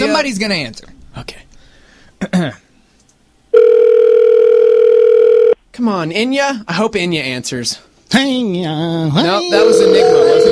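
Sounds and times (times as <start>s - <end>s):
speech: 0.1s - 1.4s, 2.2s - 2.6s, 5.8s - 10.4s
telephone ringing tone after dialing a toll-free number: 3.6s - 5.6s, 9.6s - 10.4s.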